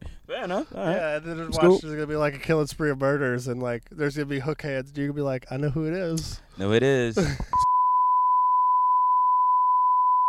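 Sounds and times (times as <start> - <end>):
speech: 0.4 - 7.6
censor bleep pure tone: 7.6 - 10.2.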